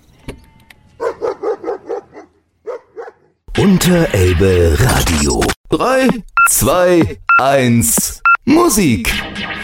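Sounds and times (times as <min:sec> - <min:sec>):
dog barking: 0:01.0 - 0:03.4
speech: 0:03.6 - 0:09.6.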